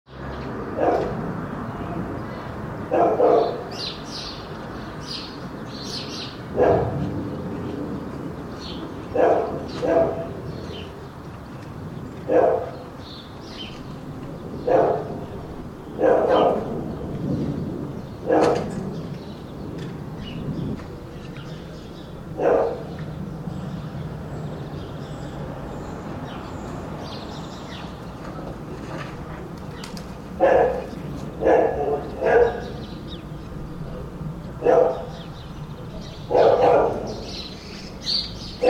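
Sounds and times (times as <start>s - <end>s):
back yard ambience: 0.1s - 38.6s
dog barking in a back yard: 0.8s - 1.2s, 2.9s - 3.7s, 6.6s - 7.0s, 9.1s - 10.4s, 12.3s - 12.8s, 14.6s - 15.2s, 16.0s - 16.7s, 18.3s - 18.7s, 22.4s - 22.9s, 30.4s - 32.8s, 34.6s - 35.2s, 36.3s - 37.4s.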